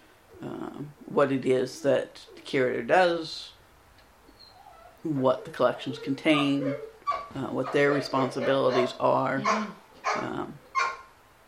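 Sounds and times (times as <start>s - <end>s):
speech: 0.8s - 3.6s, 5.0s - 10.6s
dog barking: 6.4s - 11.1s.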